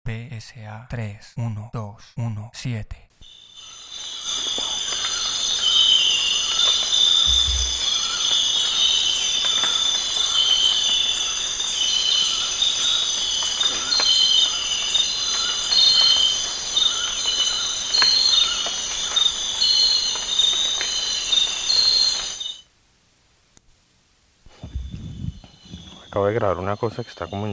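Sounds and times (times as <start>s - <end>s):
speech: 0.4s - 3.4s, 26.2s - 27.5s
chorus of crickets chirping: 3.2s - 22.7s, 24.5s - 27.5s
faint rumbling: 7.2s - 8.3s, 24.5s - 26.3s.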